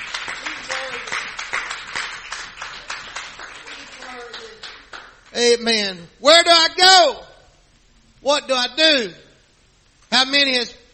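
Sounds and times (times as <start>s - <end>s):
crowd clapping: 0.0s - 5.4s
speech: 5.4s - 7.3s, 8.2s - 9.2s, 10.1s - 10.8s.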